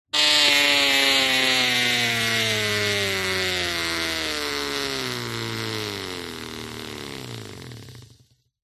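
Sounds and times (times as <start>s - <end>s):
bicycle pushbike wheel tyre spinning: 0.2s - 8.4s.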